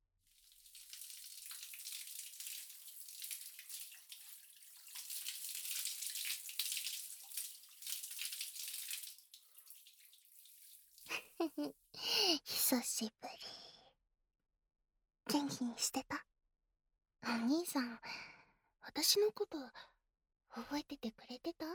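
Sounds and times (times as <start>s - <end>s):
water from a shower spray rinsing hair: 0.3s - 11.7s
speech: 11.5s - 13.6s, 15.6s - 16.0s, 17.4s - 18.2s, 19.0s - 19.9s, 20.5s - 21.7s.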